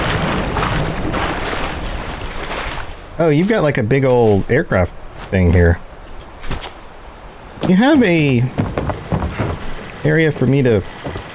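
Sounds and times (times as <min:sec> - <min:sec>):
lake water splashing and churning: 0:00.0 - 0:11.3
speech: 0:03.2 - 0:05.9, 0:07.6 - 0:08.8, 0:10.0 - 0:11.3.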